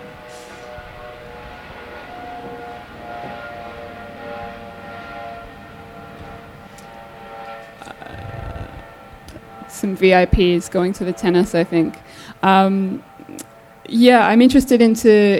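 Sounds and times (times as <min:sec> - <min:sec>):
airplane flying overhead: 0:00.0 - 0:15.3
speech: 0:09.8 - 0:13.1, 0:13.9 - 0:15.3.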